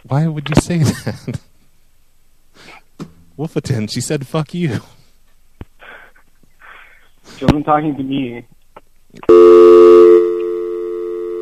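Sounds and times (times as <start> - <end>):
speech: 0.1 - 1.5, 3.4 - 5.0, 7.4 - 9.6
steady telephone dial tone: 9.3 - 11.3.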